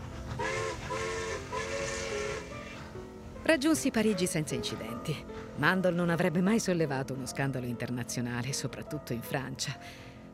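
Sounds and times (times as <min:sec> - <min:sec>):
steam train whistle blasts: 0:00.4 - 0:02.8
speech: 0:03.5 - 0:10.1.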